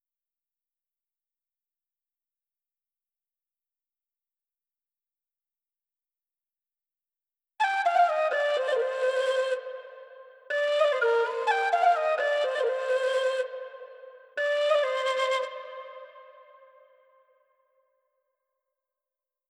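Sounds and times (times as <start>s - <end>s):
flute in C minor: 7.6s - 17.3s.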